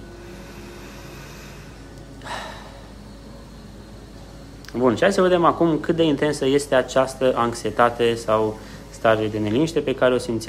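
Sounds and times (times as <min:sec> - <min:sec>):
deep breath: 0:00.0 - 0:03.5, 0:08.6 - 0:08.9
steady low hum: 0:00.0 - 0:10.4
speech: 0:04.7 - 0:10.4.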